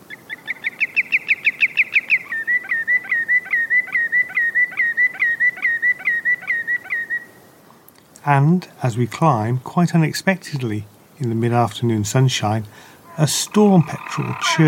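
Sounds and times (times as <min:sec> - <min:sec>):
Common Greenshank calling from the rocky shore of an island: 0:00.3 - 0:07.3, 0:13.1 - 0:14.6
speech: 0:08.3 - 0:14.6.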